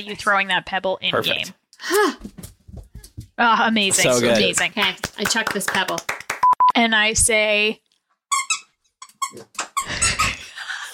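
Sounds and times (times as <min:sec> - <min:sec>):
speech: 0:00.0 - 0:02.3, 0:03.4 - 0:06.1, 0:06.8 - 0:07.8, 0:09.3 - 0:09.6
squeaky toy squeaking as it is thrown: 0:08.3 - 0:10.4.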